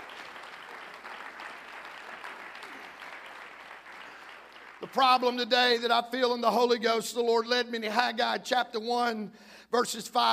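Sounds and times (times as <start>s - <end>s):
crowd clapping: 0.0s - 6.4s
speech: 4.8s - 10.3s.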